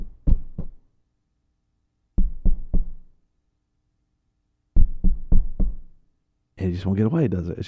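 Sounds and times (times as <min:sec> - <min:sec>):
sharp knocks on a door: 0:00.0 - 0:00.8, 0:02.2 - 0:03.1, 0:04.8 - 0:05.9
speech: 0:06.6 - 0:07.6.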